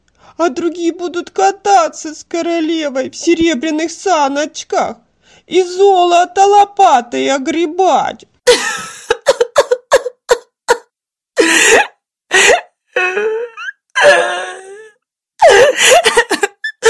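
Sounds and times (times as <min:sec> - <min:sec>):
speech: 0:00.4 - 0:08.9
girl crying and wailing: 0:08.5 - 0:16.8.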